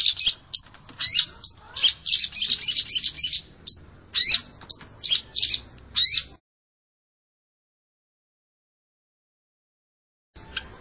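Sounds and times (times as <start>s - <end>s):
long-tailed shrike chattering song: 0.0s - 6.4s.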